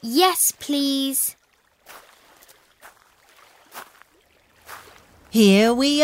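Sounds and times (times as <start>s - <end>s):
speech: 0.0s - 2.0s, 5.3s - 6.0s
faint watery background: 0.0s - 6.0s
paddle splashes of boats moving on water at a floating market in Thailand: 1.3s - 5.4s.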